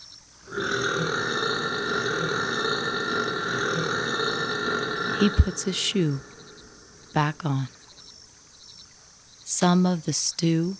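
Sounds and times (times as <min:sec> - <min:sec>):
enormous drawn-out burp: 0:00.5 - 0:07.8
speech: 0:05.2 - 0:06.3, 0:07.2 - 0:07.8, 0:09.6 - 0:10.7.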